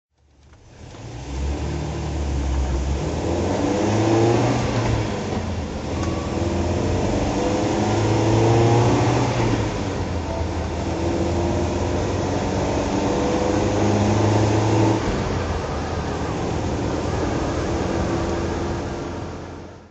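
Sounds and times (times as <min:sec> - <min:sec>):
Volvo P1800S driving: 0:00.2 - 0:19.9.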